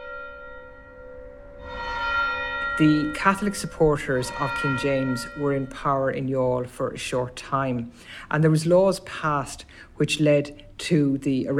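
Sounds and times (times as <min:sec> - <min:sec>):
church bell ringing with a sustained metallic hum: 0:00.0 - 0:07.8
speech: 0:02.8 - 0:11.5.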